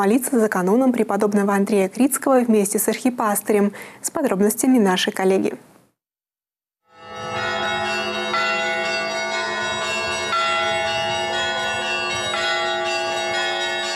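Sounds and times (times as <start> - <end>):
speech: 0.0 - 5.7
church bells of the Holy Spirit church in Nefteyugansk pealing for a Lenten service: 6.9 - 13.9.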